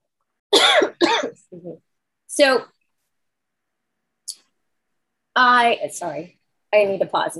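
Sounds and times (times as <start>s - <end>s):
person coughing: 0.6s - 1.7s
speech: 1.6s - 2.7s, 5.4s - 7.3s.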